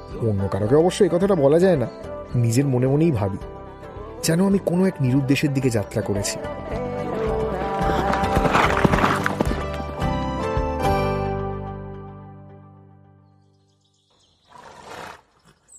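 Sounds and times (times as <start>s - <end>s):
music: 0.0s - 13.9s
speech: 0.1s - 3.6s, 4.2s - 6.8s
horse hooves clip-clopping while riding over a snow-patched mountain: 7.6s - 10.1s.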